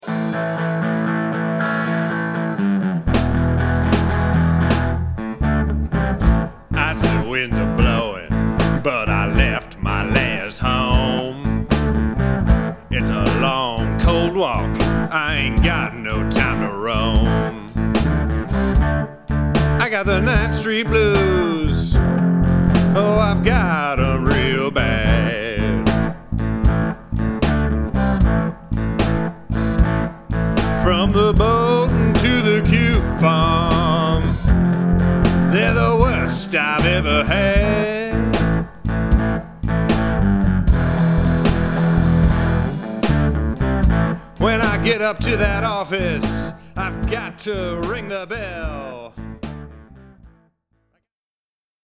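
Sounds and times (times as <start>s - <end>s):
blues music: 0.0s - 50.3s.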